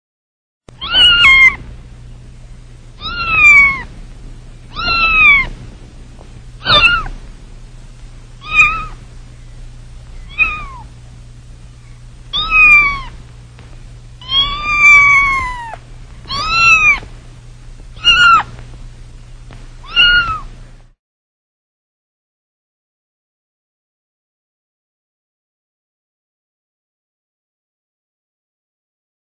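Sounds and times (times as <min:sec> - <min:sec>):
kitten: 0:00.7 - 0:01.6, 0:03.0 - 0:03.9, 0:04.7 - 0:05.5, 0:06.6 - 0:07.2, 0:08.4 - 0:09.0, 0:10.2 - 0:10.9, 0:12.3 - 0:13.2, 0:14.2 - 0:17.1, 0:18.0 - 0:18.6, 0:19.5 - 0:20.5.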